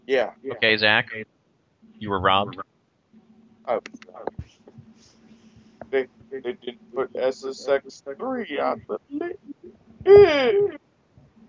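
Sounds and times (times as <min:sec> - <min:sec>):
speech: 0:00.1 - 0:01.4, 0:02.0 - 0:02.7, 0:03.7 - 0:04.6, 0:05.9 - 0:10.8
person's voice imitating an owl-like hoot: 0:09.0 - 0:10.8.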